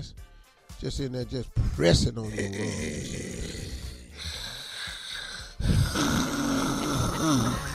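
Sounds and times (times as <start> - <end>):
speech: 0.8 - 3.4
loud rasping snore: 2.3 - 7.7.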